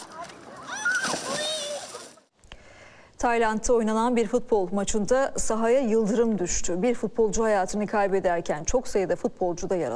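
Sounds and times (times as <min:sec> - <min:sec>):
excited voices including children's calling: 0:00.0 - 0:02.2
water splashing and sloshing as people swim in the sea: 0:00.0 - 0:02.3
speech: 0:03.2 - 0:09.9.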